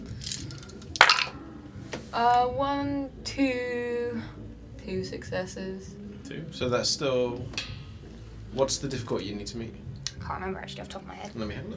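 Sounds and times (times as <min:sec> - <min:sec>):
dice clattering onto a hard tabletop: 0:00.0 - 0:01.4
speech: 0:02.2 - 0:07.7, 0:08.5 - 0:11.7.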